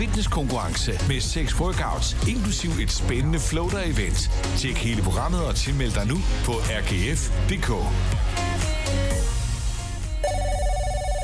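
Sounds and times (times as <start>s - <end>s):
speech: 0.0s - 9.1s
telephone melodic electronic ringtone: 10.2s - 11.2s.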